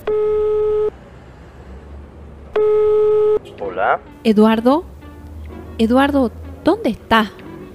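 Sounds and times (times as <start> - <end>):
mobile phone call ringback tone: 0.0 - 0.9, 2.6 - 3.4
speech: 3.8 - 4.9, 5.8 - 7.4.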